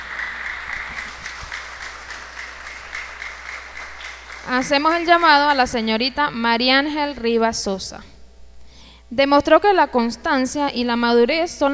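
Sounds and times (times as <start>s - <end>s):
audience clapping: 0.0s - 5.9s
speech: 4.4s - 8.1s, 9.1s - 11.7s.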